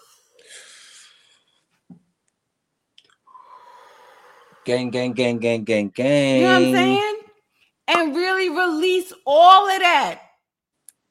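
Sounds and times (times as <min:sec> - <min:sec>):
deep breath drawn in from the diaphragm: 0:00.4 - 0:01.6, 0:03.3 - 0:04.7
speech: 0:04.7 - 0:07.1, 0:08.9 - 0:10.2.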